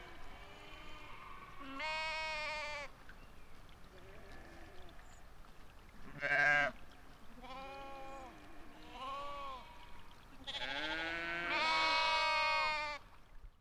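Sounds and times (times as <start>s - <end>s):
sheep bleating in Val d'Ajol: 0.4s - 2.9s, 6.1s - 6.8s, 7.4s - 13.0s.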